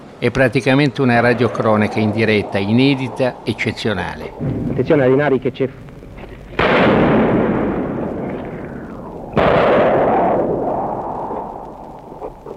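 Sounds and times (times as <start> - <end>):
speech: 0.2 - 5.9
sniper gunshots from a window amid city rubble: 6.5 - 11.1.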